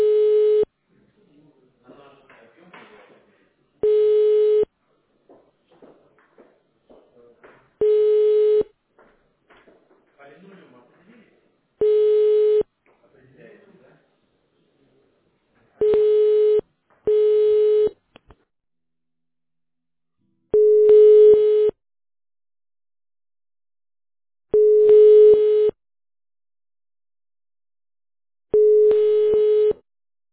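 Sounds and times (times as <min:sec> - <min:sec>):
telephone line beeps while a call is transferred to a company employee: 0:00.0 - 0:00.7, 0:03.8 - 0:04.7, 0:07.8 - 0:08.7, 0:11.8 - 0:12.7, 0:15.8 - 0:18.0, 0:20.6 - 0:21.8, 0:24.5 - 0:25.8, 0:28.5 - 0:29.8.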